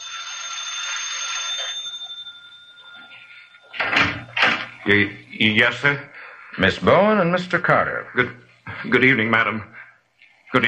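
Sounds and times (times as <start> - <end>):
bell ringing with a bright sustained metallic tone: 0.0 - 4.8
speech: 4.8 - 9.7.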